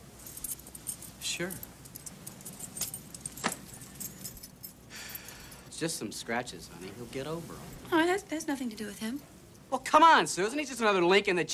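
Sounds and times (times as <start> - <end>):
keys jangling as they are handed back: 0.0 - 5.7
speech: 1.4 - 1.7, 5.8 - 11.5.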